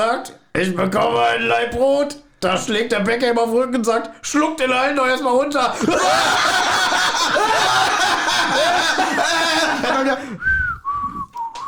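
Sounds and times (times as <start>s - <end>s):
speech: 0.0s - 8.0s
snickering laughter: 5.8s - 10.4s
busy wavering whistling: 10.3s - 11.6s.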